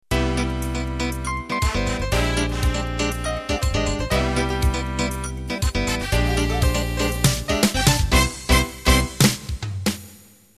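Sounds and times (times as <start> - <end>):
samba ballroom music intro: 0.1 - 9.6.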